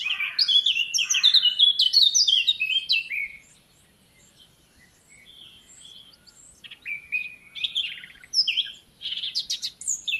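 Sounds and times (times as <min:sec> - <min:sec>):
Eurasian blackcap singing: 0:00.0 - 0:10.1.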